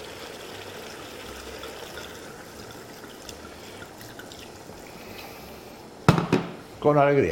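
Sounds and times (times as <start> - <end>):
wine pouring from a bottle into a cooking pot: 0.0 - 5.1
speech: 6.8 - 7.3.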